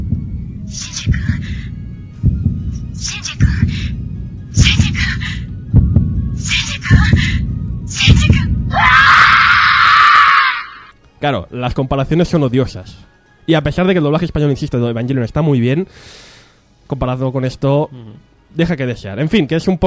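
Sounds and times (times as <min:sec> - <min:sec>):
steady pounding heartbeat-like throb: 0:00.0 - 0:09.8
animated character's anguished scream in Japanese dub: 0:08.7 - 0:10.9
speech: 0:11.2 - 0:16.3, 0:16.9 - 0:19.8.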